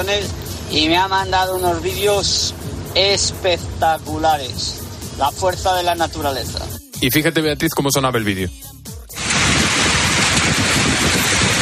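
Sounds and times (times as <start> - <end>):
speech: 0.0 - 8.7
billiard-ball-sized hail falling: 9.2 - 11.6.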